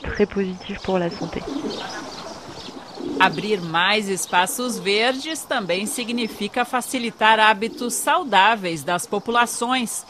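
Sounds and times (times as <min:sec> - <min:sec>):
speech: 0:00.2 - 0:02.0, 0:03.2 - 0:10.0
thinner higher bird chirps: 0:00.6 - 0:08.0
low cooing notes: 0:01.3 - 0:09.0.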